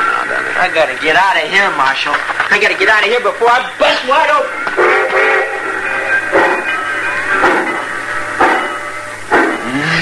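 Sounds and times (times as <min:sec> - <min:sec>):
speech: 0:00.6 - 0:05.0
steam train engine chuffs pulling out of station: 0:04.6 - 0:10.0.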